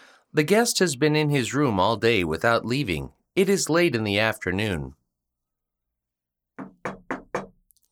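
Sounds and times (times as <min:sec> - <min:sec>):
speech: 0:00.3 - 0:05.0
firm knuckle knocks on a wooden door: 0:06.6 - 0:07.6.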